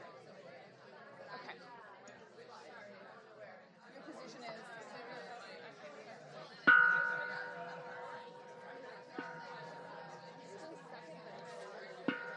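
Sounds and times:
room full of murmuring chatter: 0:00.0 - 0:12.3
bell rung to get attention: 0:06.7 - 0:12.3.

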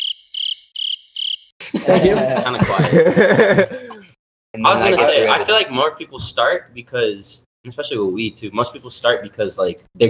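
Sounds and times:
crickets chirping in high buzzing trills: 0:00.0 - 0:01.6
laughter: 0:01.6 - 0:04.2
speech: 0:01.8 - 0:03.8, 0:04.6 - 0:10.0.

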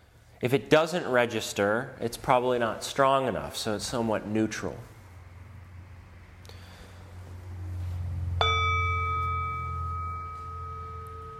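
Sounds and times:
speech: 0:00.4 - 0:04.9
steady low hum: 0:04.9 - 0:11.3
bell struck once and ringing: 0:08.4 - 0:11.3.

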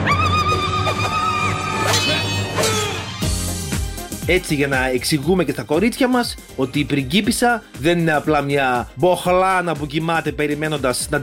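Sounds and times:
horse whinnying: 0:00.0 - 0:03.3
dense steady musical backdrop: 0:00.0 - 0:11.2
speech: 0:04.3 - 0:11.2.

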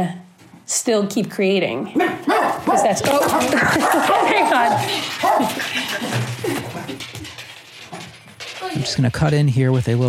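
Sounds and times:
speech: 0:00.0 - 0:07.4, 0:08.6 - 0:10.0
dog scrambling off a lap: 0:01.9 - 0:10.0
rustling and jostling: 0:02.2 - 0:10.0.

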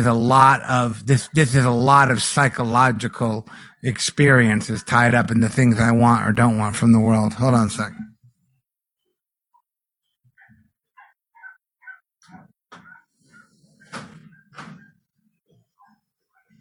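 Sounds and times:
speech: 0:00.0 - 0:08.1
dog barking outside: 0:10.4 - 0:14.9
thuds: 0:13.8 - 0:15.0.

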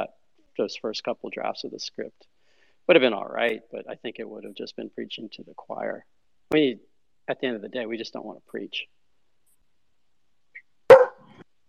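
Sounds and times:
speech: 0:00.0 - 0:09.0
dog barking: 0:10.9 - 0:11.3.

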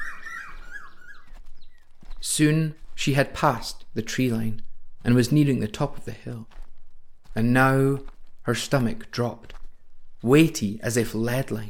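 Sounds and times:
cuckoo calling in a forest: 0:00.0 - 0:02.2
faint airy woodland background: 0:00.0 - 0:11.6
soft rustle: 0:00.9 - 0:10.6
speech: 0:02.3 - 0:06.6, 0:07.4 - 0:09.6, 0:10.2 - 0:11.6.

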